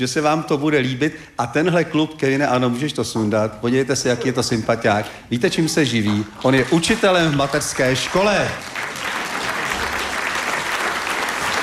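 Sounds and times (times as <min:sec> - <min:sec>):
speech: 0:00.0 - 0:08.8
audience applause: 0:06.2 - 0:11.6.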